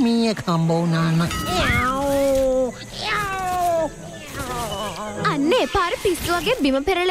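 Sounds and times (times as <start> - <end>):
speech: 0.3 - 2.0, 5.4 - 7.0
cat meowing: 1.5 - 4.7.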